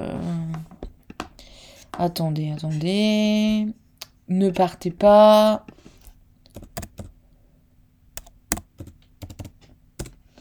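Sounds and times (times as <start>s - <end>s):
faint low hum: 0.0s - 10.3s
speech: 2.0s - 5.7s
computer keyboard typing: 6.5s - 7.2s, 8.2s - 10.2s.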